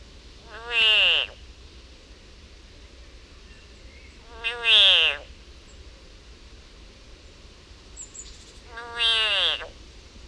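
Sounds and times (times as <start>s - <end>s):
background hiss: 0.0s - 10.2s
frog distress scream: 0.5s - 1.4s, 4.4s - 5.2s, 8.7s - 9.7s.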